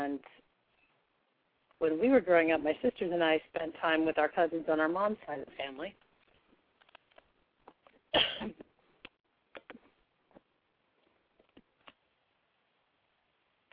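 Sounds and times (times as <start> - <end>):
speech: 0.1 - 0.4, 1.8 - 6.0, 8.1 - 8.6
man coughing: 8.2 - 8.6.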